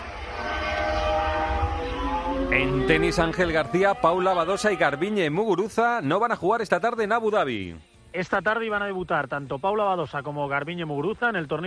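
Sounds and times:
Formula One car engine screaming past on the Jerez race circuit during tyre testing: 0.0s - 5.0s
speech: 2.5s - 11.6s.

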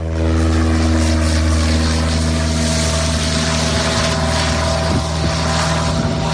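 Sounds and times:
small propeller plane droning overhead over beach: 0.0s - 6.3s.

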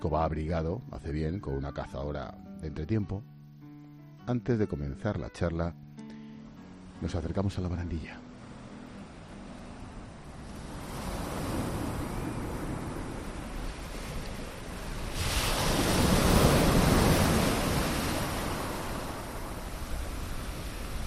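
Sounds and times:
speech: 0.0s - 3.4s, 4.3s - 5.8s, 7.0s - 8.2s
sea waves washing onto a beach: 8.4s - 21.0s.

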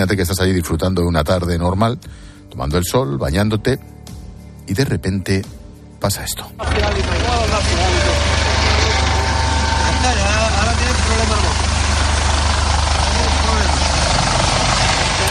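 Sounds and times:
speech: 0.0s - 4.0s, 4.7s - 7.8s
customs surveillance helicopter flying low over water: 6.6s - 15.2s.

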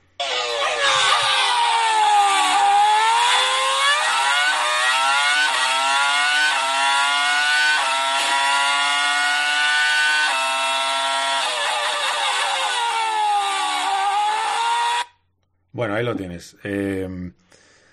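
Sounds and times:
Renault V10 Formula 1 racing engine screaming at Magny-Cours: 0.2s - 15.2s
speech: 16.0s - 17.4s.

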